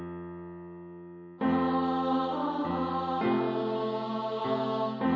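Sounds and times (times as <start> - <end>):
carol: 1.4 - 5.1.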